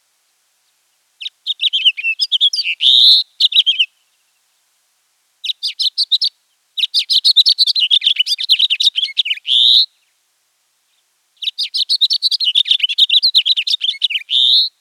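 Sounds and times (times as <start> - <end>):
house finch singing: 1.2 - 3.9, 5.4 - 9.9, 11.4 - 14.7.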